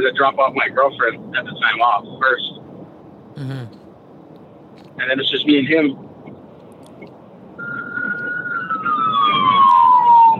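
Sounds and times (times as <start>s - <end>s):
speech: 0.0s - 2.6s, 3.4s - 3.8s, 4.8s - 6.1s
police siren wailing in a long falling tone: 7.6s - 10.3s.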